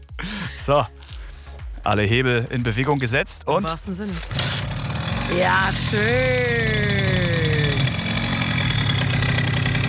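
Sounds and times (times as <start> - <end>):
speech: 0.6 - 1.0, 1.8 - 4.7, 5.3 - 6.8
Simson moped engine started with the kickstarter and idling: 4.1 - 9.8.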